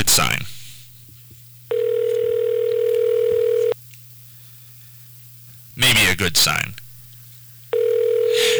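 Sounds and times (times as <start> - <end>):
low hum: 0.0 - 8.5
electronic telephone ring tone heard down the line: 1.7 - 3.8, 7.7 - 8.5
speech: 6.2 - 6.8.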